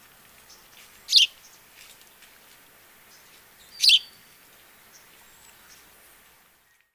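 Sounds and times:
house sparrow Passer domesticus chirping: 1.1 - 1.6, 3.1 - 4.2.

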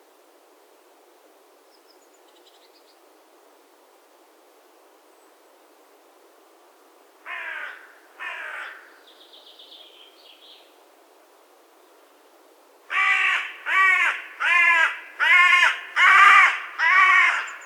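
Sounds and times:
carrion crow Corvus corone cawing: 7.3 - 8.9, 12.9 - 17.6.

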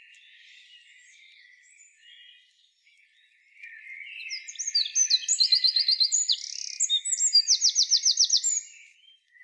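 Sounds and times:
soft bird twittering: 3.7 - 9.0
Eurasian wren Troglodytes troglodytes singing high-pitched trills and rattles: 4.4 - 8.7.

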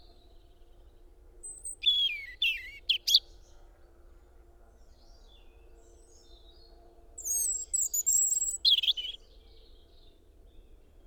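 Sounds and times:
European robin singing with sharp high whistles and sliding notes: 1.4 - 3.2, 7.2 - 9.2.

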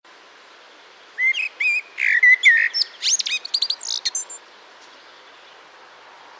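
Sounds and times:
Eurasian blackbird singing a mellow fluted warble with scratchy squeaks and twitters: 1.2 - 4.4.

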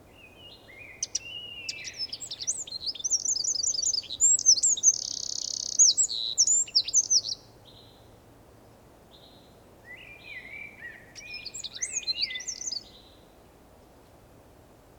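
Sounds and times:
Eurasian wren Troglodytes troglodytes song: 0.2 - 7.5, 9.9 - 13.0.

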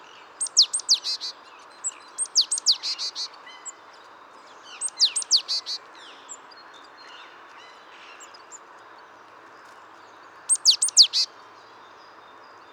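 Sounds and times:
Great tit Parus major calls: 0.4 - 3.8, 4.7 - 6.4, 10.4 - 11.3.

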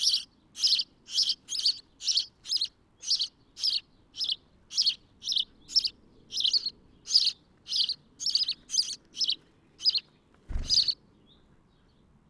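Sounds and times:
house sparrow Passer domesticus chirping: 0.0 - 12.2
low thump: 10.5 - 11.0.

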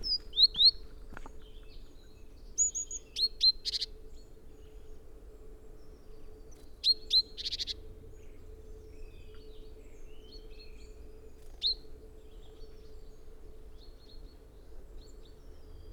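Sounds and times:
great tit Parus major calls: 0.0 - 0.8, 2.6 - 3.9, 6.8 - 7.8
faint steady hum: 0.0 - 15.9.

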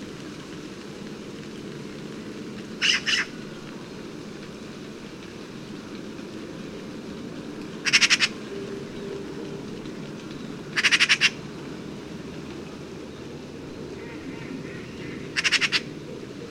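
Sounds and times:
steady low background hiss: 0.0 - 16.4
Eurasian magpie Pica pica giving brief dry rattles: 7.8 - 8.4, 10.7 - 11.4, 15.4 - 15.9.

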